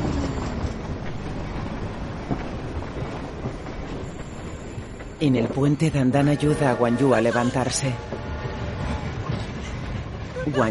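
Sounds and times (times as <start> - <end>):
freight train carrying coal rolling past: 0.0 - 10.6
freight train wheels clacking on the rails: 0.0 - 10.6
speech: 5.2 - 8.1, 10.5 - 10.6.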